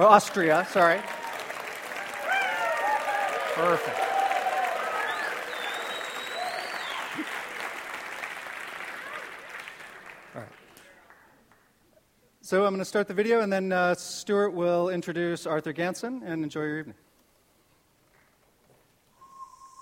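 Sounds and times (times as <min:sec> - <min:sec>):
speech: 0:00.0 - 0:01.1, 0:03.6 - 0:04.0, 0:12.5 - 0:17.0
room full of people applauding: 0:00.0 - 0:11.6.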